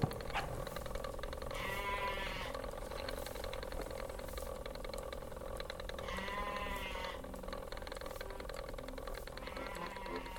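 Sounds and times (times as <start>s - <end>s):
constant low hum of outdoor noise: 0.0s - 10.3s
sheep bleating: 1.5s - 2.6s, 6.0s - 7.2s, 9.4s - 10.3s.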